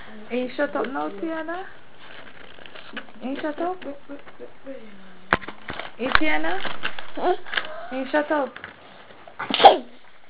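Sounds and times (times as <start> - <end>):
speech: 0.3 - 1.8, 2.9 - 5.2, 6.0 - 8.6, 9.4 - 10.0
sneeze: 9.4 - 10.0.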